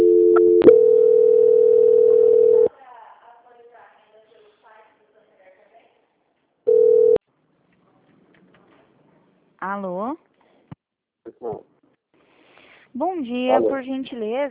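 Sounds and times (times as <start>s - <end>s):
steady mid-pitched telephone tone during call transfer: 0.0s - 2.7s, 6.7s - 7.2s
speech: 13.6s - 14.4s.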